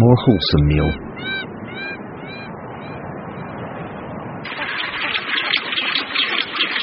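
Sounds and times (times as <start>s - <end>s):
constant noisy wash: 0.0s - 6.8s
speech: 0.1s - 1.4s
rockhopper penguin colony braying and squawking: 0.1s - 2.4s, 4.5s - 6.8s.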